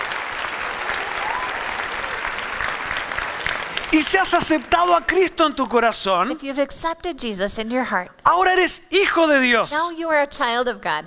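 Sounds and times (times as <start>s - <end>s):
church congregation applauding: 0.0s - 5.4s
speech: 3.9s - 11.0s.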